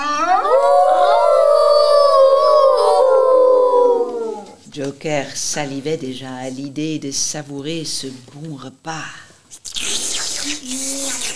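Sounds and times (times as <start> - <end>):
wolf howling: 0.0 - 4.6
speech: 5.0 - 9.7, 10.6 - 11.2.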